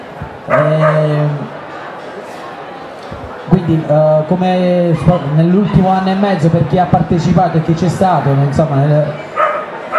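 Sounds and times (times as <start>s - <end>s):
low murmur during a book presentation: 0.0s - 9.9s
dog barking: 0.5s - 1.1s, 9.4s - 9.9s
speech: 0.5s - 1.5s, 3.7s - 9.2s.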